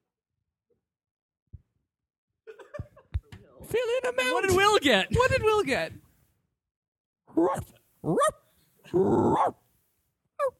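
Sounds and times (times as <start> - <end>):
speech: 3.7 - 6.0, 7.4 - 9.6
puppy barking and growling: 7.3 - 9.6
puppy yipping: 9.2 - 9.6.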